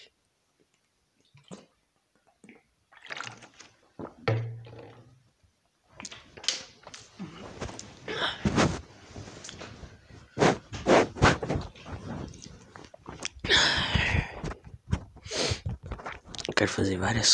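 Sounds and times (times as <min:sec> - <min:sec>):
sips and swallows: 0:01.2 - 0:04.2, 0:06.9 - 0:16.5
person drinking a glass of water: 0:01.2 - 0:05.1, 0:06.0 - 0:16.6
speech: 0:16.6 - 0:17.3.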